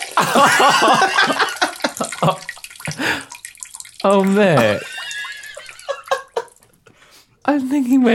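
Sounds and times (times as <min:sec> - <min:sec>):
scotch pouring into a large glass: 0:00.0 - 0:06.8
speech: 0:00.2 - 0:01.5, 0:02.3 - 0:02.6, 0:04.0 - 0:04.9, 0:07.9 - 0:08.1
person chuckling: 0:00.2 - 0:03.2, 0:04.6 - 0:06.6.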